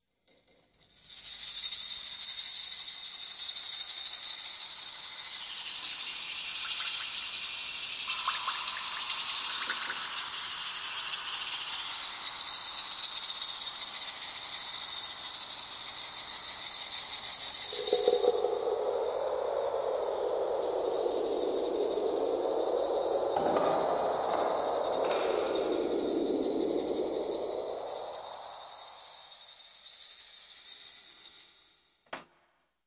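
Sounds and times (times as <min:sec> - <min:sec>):
ethnic rattle atmosphere: 0:00.3 - 0:31.8.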